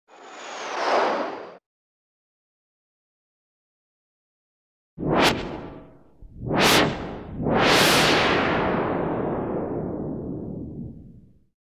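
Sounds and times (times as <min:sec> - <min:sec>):
spaceship fly-by swoosh: 0:00.1 - 0:01.6, 0:05.0 - 0:11.3.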